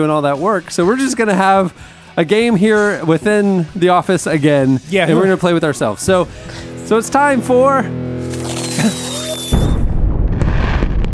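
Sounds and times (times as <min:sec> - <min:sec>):
speech: 0:00.0 - 0:09.1
firework whistling: 0:08.2 - 0:10.0
firework bursting into a deep boom that rumbles and crackles: 0:08.9 - 0:11.1.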